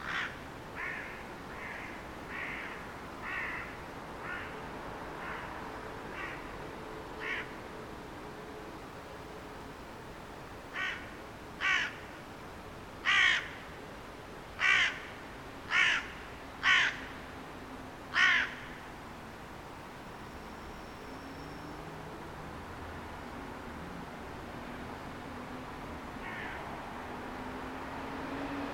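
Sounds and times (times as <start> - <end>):
carrion crow cawing, Corvus corone: 0.0 - 4.6, 5.2 - 5.5, 6.1 - 6.5, 7.2 - 7.5, 10.7 - 12.0, 13.0 - 13.6, 14.6 - 15.1, 15.7 - 17.1, 18.1 - 18.7, 26.2 - 26.6
steady background noise: 0.0 - 28.7.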